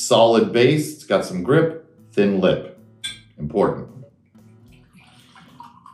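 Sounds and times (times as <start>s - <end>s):
speech: 0.1s - 2.7s, 3.4s - 4.0s
glass ringing as it fills: 3.0s - 3.4s
whiskey pouring neat into a glass with a solid base and thin lip: 4.5s - 5.9s.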